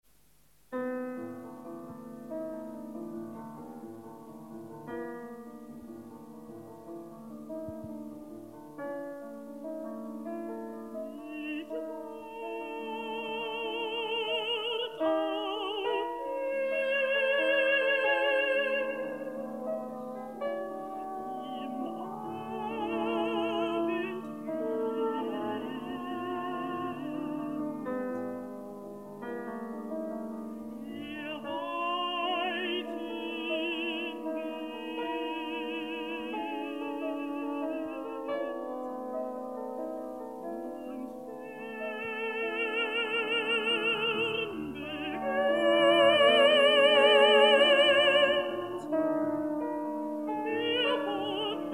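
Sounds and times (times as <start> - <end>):
piano playing: 0.7 - 51.7
mezzo-soprano singing: 0.8 - 51.7.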